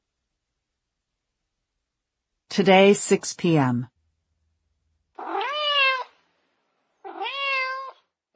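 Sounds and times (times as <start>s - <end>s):
speech: 2.6s - 3.9s
cat yowling meows: 5.2s - 6.1s, 7.0s - 8.0s.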